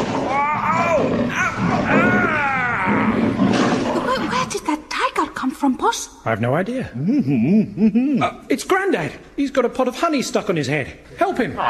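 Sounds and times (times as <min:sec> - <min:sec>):
tiger roaring loudly with throaty growling bellows: 0:00.0 - 0:04.5
speech: 0:05.9 - 0:11.6.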